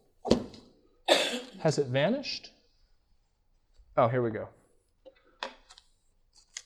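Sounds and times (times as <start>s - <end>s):
speech: 1.6s - 2.6s, 4.0s - 4.6s
sheet of paper rustling and crinkling: 5.7s - 6.6s.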